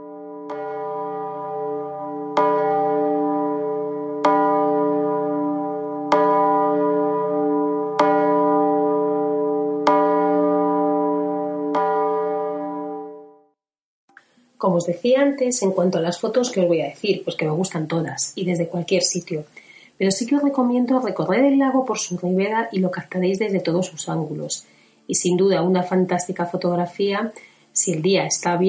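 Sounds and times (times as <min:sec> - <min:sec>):
large bell struck by visitors making a wish: 0:00.0 - 0:13.3
speech: 0:14.8 - 0:28.6.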